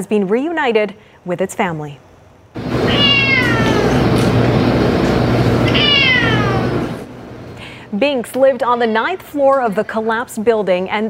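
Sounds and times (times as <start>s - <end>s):
speech: 0.0s - 3.2s, 5.8s - 6.7s, 7.9s - 11.0s
constant low mechanical hum: 1.8s - 10.5s
cat meowing: 2.8s - 4.0s, 5.6s - 6.9s.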